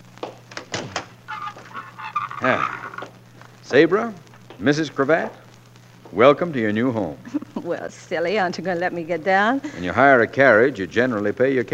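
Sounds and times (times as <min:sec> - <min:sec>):
low steady hum: 0:00.0 - 0:11.7
door creaking squeal as it swings open: 0:00.5 - 0:03.2
speech: 0:02.4 - 0:02.8, 0:03.7 - 0:05.4, 0:06.1 - 0:11.7.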